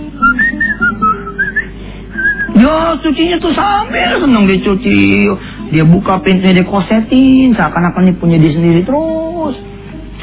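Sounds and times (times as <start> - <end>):
man whistling a cheerful tune while washing a car: 0.0 - 2.6
speech: 2.6 - 9.7.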